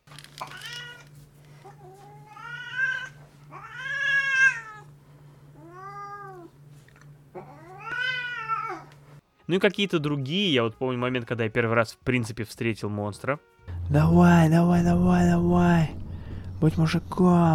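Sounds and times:
steady low electrical hum: 0:00.0 - 0:09.5, 0:13.6 - 0:17.5
domestic cat yowling loudly beside a desk: 0:00.4 - 0:04.9, 0:05.6 - 0:06.6, 0:07.3 - 0:08.9
speech: 0:09.5 - 0:16.0, 0:16.6 - 0:17.5.

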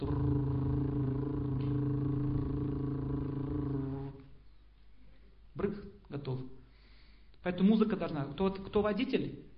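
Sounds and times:
voice imitating a car engine: 0:00.0 - 0:04.2
speech: 0:07.5 - 0:09.5.

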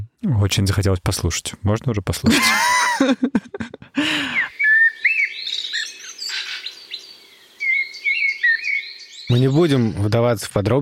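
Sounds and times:
speech: 0:00.2 - 0:04.5, 0:09.3 - 0:10.8
laughter: 0:02.2 - 0:04.5
common blackbird singing: 0:04.1 - 0:10.4.

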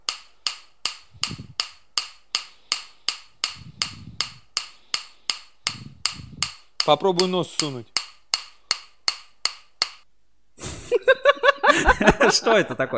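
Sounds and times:
two metal hammers clinking together: 0:00.0 - 0:10.0
speech: 0:06.9 - 0:08.0, 0:12.0 - 0:12.9
laughter: 0:10.6 - 0:12.9.

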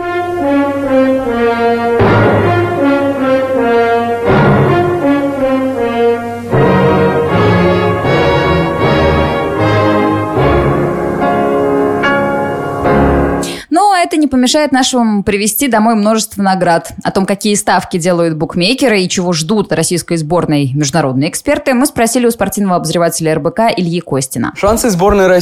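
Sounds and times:
loud orchestral piano concerto passage: 0:00.0 - 0:13.5
speech: 0:14.4 - 0:25.3.

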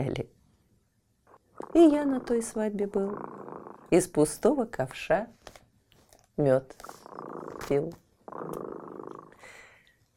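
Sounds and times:
speech: 0:00.0 - 0:00.4, 0:01.7 - 0:05.6, 0:06.4 - 0:08.6
cat purring: 0:01.3 - 0:04.4, 0:06.7 - 0:09.6.

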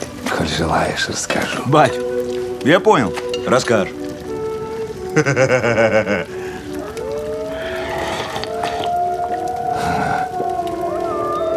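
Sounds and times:
several wolves howling together: 0:00.0 - 0:11.5
speech: 0:00.6 - 0:04.0, 0:05.2 - 0:06.4
laughter: 0:05.1 - 0:06.7.

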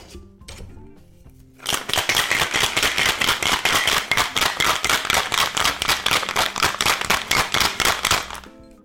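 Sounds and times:
cocktail shaker rattling while being shaken hard: 0:01.6 - 0:08.5.

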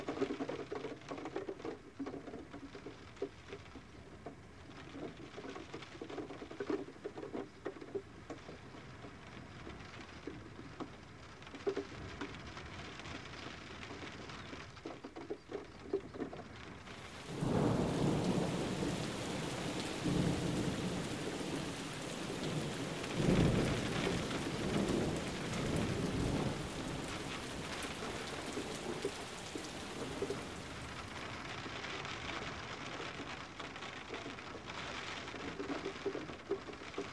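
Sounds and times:
rain falling outside a glass greenhouse during a thunderstorm: 0:00.0 - 0:37.1
heavy roll of thunder: 0:16.9 - 0:31.7.

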